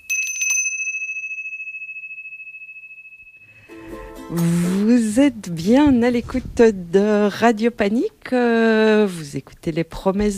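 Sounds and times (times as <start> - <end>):
small bell ringing: 0.0 - 3.7
speech: 4.3 - 10.3
rustling noise: 4.5 - 6.8.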